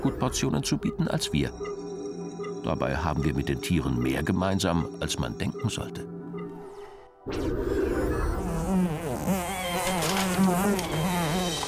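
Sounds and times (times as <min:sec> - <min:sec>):
speech: 0:00.1 - 0:01.8, 0:02.6 - 0:06.1, 0:07.2 - 0:07.7
fly buzzing: 0:08.3 - 0:11.6.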